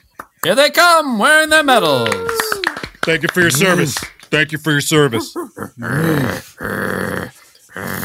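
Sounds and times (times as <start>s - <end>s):
speech: 0.4s - 2.3s, 3.1s - 7.1s
police dogs growling: 5.2s - 8.0s.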